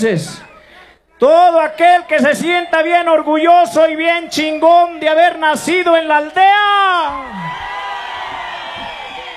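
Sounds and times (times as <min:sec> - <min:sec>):
speech: 0:00.0 - 0:00.5, 0:01.2 - 0:07.6
crowd shouting a Mexican grito: 0:06.6 - 0:09.3.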